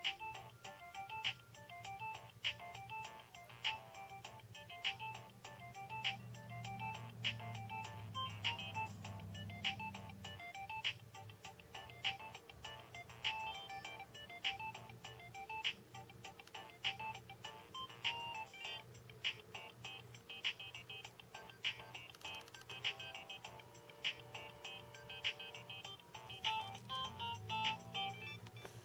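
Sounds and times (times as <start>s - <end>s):
Nokia 2610 mobile phone ringtone jig: 0.0s - 18.9s, 19.5s - 28.8s.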